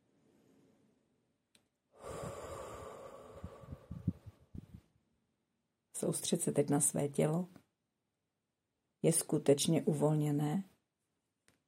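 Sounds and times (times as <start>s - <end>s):
person breathing in deeply during a guided relaxation exercise: 2.0s - 4.5s
speech: 6.0s - 7.6s, 9.0s - 10.7s.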